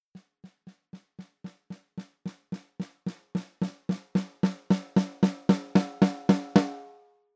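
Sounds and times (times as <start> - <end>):
snare drum swell through preamps: 3.0 - 6.9.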